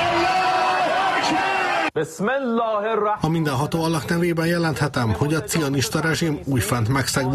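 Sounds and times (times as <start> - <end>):
crowd cheering and shouting in the streets of Tehran Iran: 0.0 - 1.9
speech: 1.3 - 7.3.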